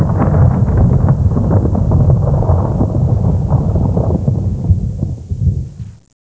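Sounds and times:
high torn thunder: 0:00.0 - 0:06.1.

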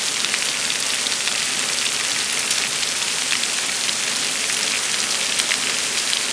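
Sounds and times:
rain: 0:00.0 - 0:06.3.

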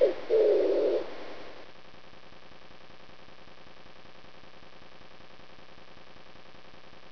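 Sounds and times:
pigeon: 0:00.0 - 0:01.1.

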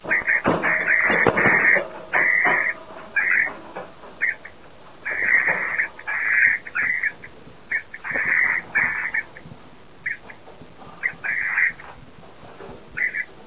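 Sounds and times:
parrot: 0:00.0 - 0:10.4, 0:11.0 - 0:12.0, 0:12.9 - 0:13.4.

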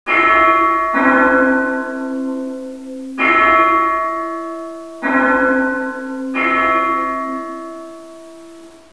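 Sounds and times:
church bells ringing: 0:00.1 - 0:08.9.

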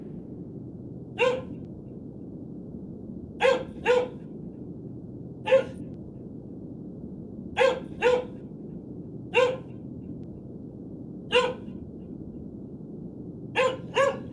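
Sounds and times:
dog barking: 0:01.2 - 0:01.6, 0:03.4 - 0:04.2, 0:05.4 - 0:05.8, 0:07.6 - 0:08.4, 0:09.3 - 0:09.8, 0:11.3 - 0:11.8, 0:13.6 - 0:14.3.

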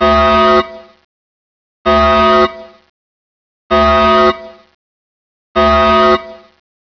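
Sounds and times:
core door alarm: 0:00.0 - 0:01.0, 0:01.9 - 0:02.9, 0:03.7 - 0:04.7, 0:05.6 - 0:06.6.

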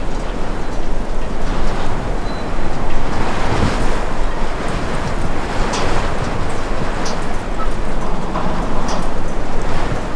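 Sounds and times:
wind indoors: 0:00.0 - 0:10.1.

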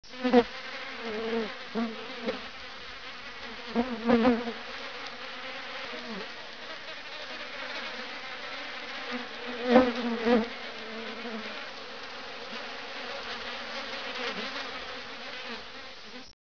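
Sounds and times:
street fly buzzing: 0:00.0 - 0:16.4.

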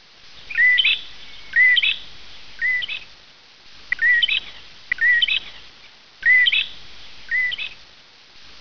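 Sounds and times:
bird calls of short chirped phrases with twittering tails: 0:00.4 - 0:03.1, 0:03.9 - 0:07.8.

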